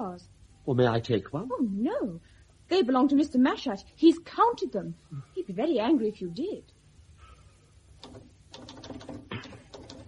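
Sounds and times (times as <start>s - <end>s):
speech: 0.1s - 6.8s
keystroke clacks of typing: 8.0s - 10.0s.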